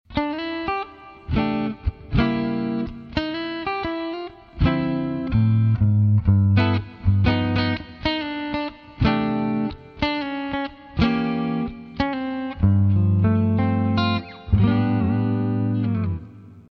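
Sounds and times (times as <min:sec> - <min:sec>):
jazz theme on guitar: 0:00.1 - 0:16.7.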